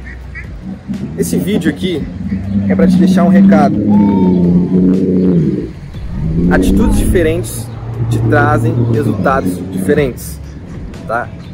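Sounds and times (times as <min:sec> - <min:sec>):
speech: 0:00.9 - 0:05.8, 0:06.4 - 0:10.4, 0:11.1 - 0:11.5
small bird calling in soft tonal cooing notes: 0:02.1 - 0:10.7.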